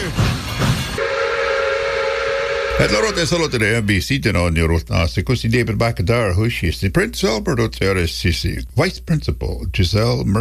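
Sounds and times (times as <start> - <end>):
train whistle: 0.0 - 3.9
heavy rumbling bursts: 1.0 - 4.3
speech: 2.8 - 10.3.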